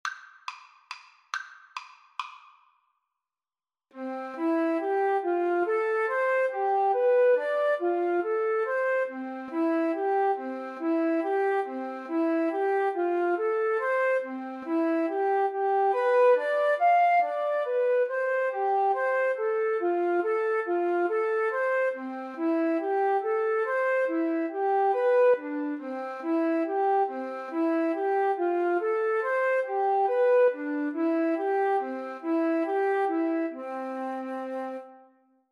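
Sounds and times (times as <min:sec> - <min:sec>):
flute duet: 0:04.0 - 0:35.4.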